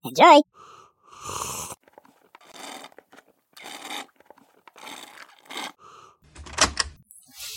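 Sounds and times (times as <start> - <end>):
speech: 0.1 - 1.6
person sipping coffee: 1.2 - 6.0.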